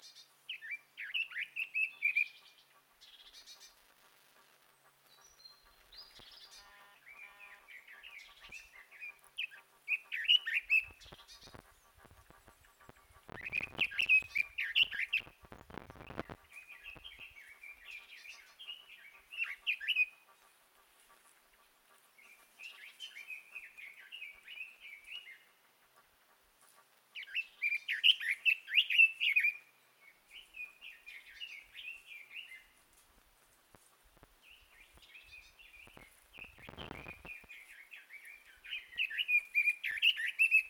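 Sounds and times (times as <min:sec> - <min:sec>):
red-billed leiothrix singing: 0:00.0 - 0:03.8, 0:05.0 - 0:20.2, 0:27.2 - 0:32.8, 0:34.4 - 0:40.6.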